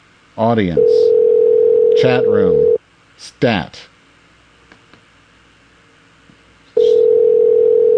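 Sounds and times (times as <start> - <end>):
speech: 0.4 - 1.1, 2.0 - 3.9
telephone dial tone: 1.1 - 2.0, 6.8 - 7.9.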